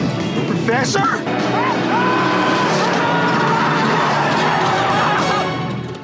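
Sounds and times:
car engine roaring: 0.0s - 6.0s
speech: 0.7s - 2.1s
car tires squealing as the car skids: 1.3s - 6.0s.

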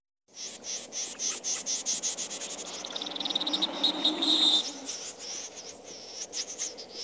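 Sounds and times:
snipe display calls: 0.3s - 7.0s.

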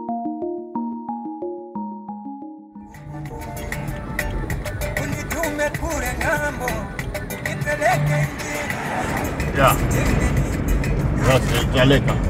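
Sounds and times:
plucked melody: 0.0s - 11.2s
car driving north out of Lilongwe: 2.9s - 12.2s
indistinct voices: 4.9s - 10.6s.

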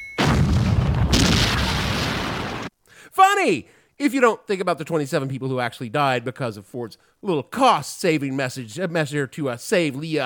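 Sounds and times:
explosion sound effect of cars blowing up in a movie shootout: 0.2s - 2.7s
speech: 3.3s - 10.2s.

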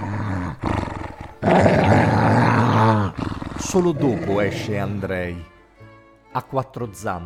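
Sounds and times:
dog growling at workers arriving at a farm: 0.0s - 5.1s
speech: 3.7s - 5.5s, 6.4s - 7.2s.

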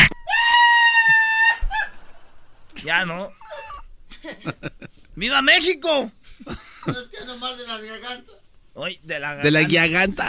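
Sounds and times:
man screaming loudly, strained and slightly bleating: 0.2s - 1.9s
speech: 2.9s - 3.4s, 4.2s - 10.2s.

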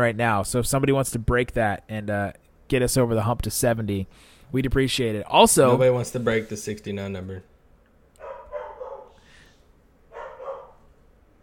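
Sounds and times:
speech: 0.0s - 7.5s
dog barking: 8.2s - 9.2s, 10.1s - 10.9s.

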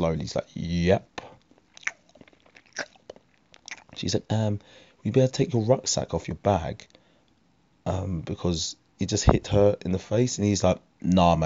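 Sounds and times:
speech: 0.0s - 1.3s, 4.0s - 6.9s, 7.8s - 11.4s
person imitating a man chewing a wrap: 1.5s - 4.1s.

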